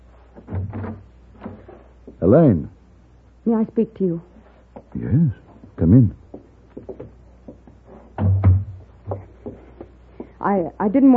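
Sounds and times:
door being pulled open: 0.4s - 1.6s
speech: 0.7s - 1.1s, 2.2s - 2.7s, 3.4s - 4.3s, 4.9s - 6.2s, 10.4s - 11.1s
door knock as it settles: 8.2s - 9.2s.

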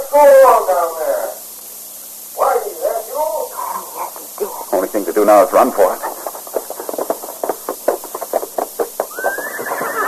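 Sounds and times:
speech: 0.1s - 1.4s, 4.9s - 6.1s
horse hooves clip-clopping: 4.2s - 10.0s.

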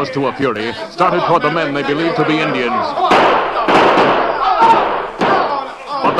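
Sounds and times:
speech: 0.0s - 5.0s
dense noisy background: 0.0s - 6.1s
gunshots in a radio drama scene: 3.0s - 6.1s.

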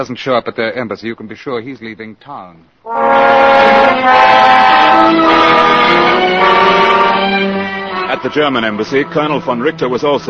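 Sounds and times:
speech: 0.0s - 7.4s, 8.1s - 10.2s
train horn blaring: 2.9s - 10.2s.

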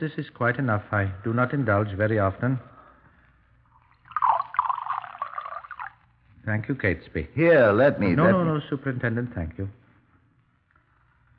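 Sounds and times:
speech: 0.0s - 2.7s, 6.5s - 9.8s
beer pouring into a glass, splashing and fizzing: 3.7s - 6.1s.

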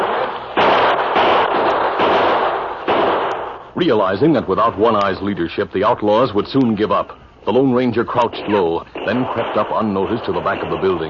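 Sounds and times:
gunfire in a shootout from a building's back windows: 0.0s - 3.7s, 8.1s - 11.0s
speech: 3.8s - 11.0s.

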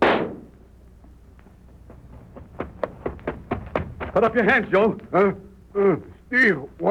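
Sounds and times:
gunshot as a gun's trigger is pulled: 0.0s - 0.5s
speech: 4.2s - 6.9s.

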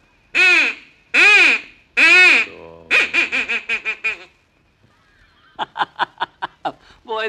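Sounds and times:
duck call blown as practice sounding a mating call: 0.4s - 4.3s
laughter: 5.2s - 6.8s.

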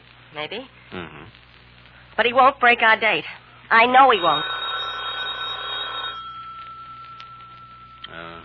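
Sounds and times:
speech: 0.3s - 1.4s, 2.2s - 4.5s
telephone bell ringing in a metallic trill: 4.0s - 8.0s.

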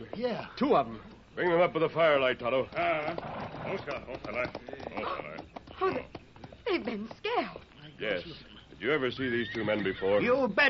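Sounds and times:
speech: 0.2s - 10.6s
hooves of a string of horses with lanterns clip-clopping: 1.6s - 7.6s, 9.2s - 10.4s.

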